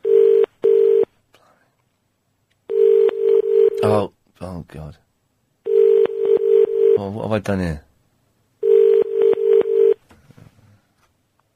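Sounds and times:
telephone ringing tone heard down the line: 0.0s - 1.1s, 2.7s - 3.8s, 5.6s - 7.0s, 8.6s - 10.0s
speech: 4.7s - 5.1s, 7.0s - 7.8s.

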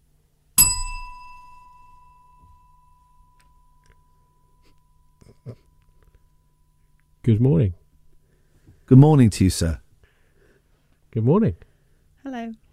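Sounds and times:
bell strike with clear metallic tone: 0.6s - 7.5s
speech: 7.3s - 7.8s, 8.9s - 9.8s, 11.1s - 12.6s.

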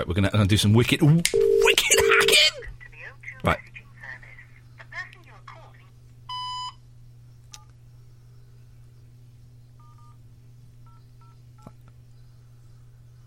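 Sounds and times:
speech: 0.0s - 2.7s, 3.4s - 3.7s
phone keypad beeps: 1.4s - 2.5s.

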